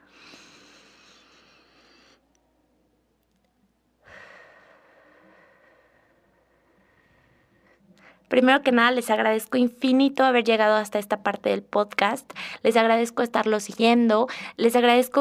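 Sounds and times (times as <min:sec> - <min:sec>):
long deep breath: 0:00.0 - 0:02.2, 0:04.0 - 0:08.2
speech: 0:08.3 - 0:15.1.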